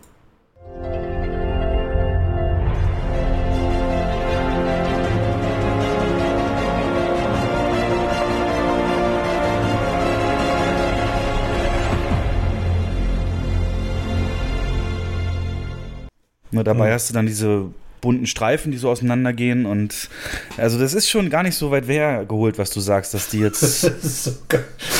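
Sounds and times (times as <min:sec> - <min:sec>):
deep sustained bass: 0:00.6 - 0:16.1
swelling orchestral fanfare of a streaming intro sound-logo: 0:00.6 - 0:16.1
brass and strings: 0:00.7 - 0:16.1
speech: 0:16.6 - 0:24.9
laughter: 0:23.2 - 0:24.9.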